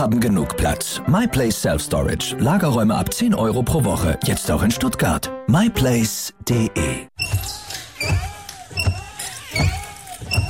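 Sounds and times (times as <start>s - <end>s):
speech: 0.0s - 7.6s
worn car windshield wipers squeaking: 7.2s - 10.4s.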